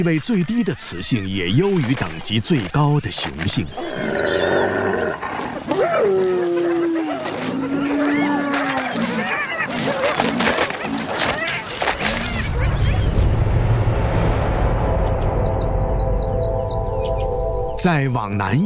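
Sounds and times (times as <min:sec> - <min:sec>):
speech: 0:00.0 - 0:06.4, 0:17.8 - 0:18.6
birds chirping: 0:00.0 - 0:18.6
spotted hyenas growling: 0:03.7 - 0:12.9
spotted hyenas letting out rising whining yelps: 0:04.2 - 0:12.7
low rumbling: 0:12.0 - 0:18.6.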